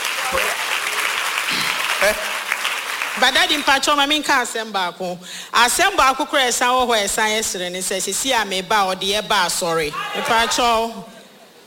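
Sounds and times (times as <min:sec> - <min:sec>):
congregation clapping hands at a prayer service: 0:00.0 - 0:04.2
speech: 0:02.0 - 0:02.3, 0:03.2 - 0:11.2.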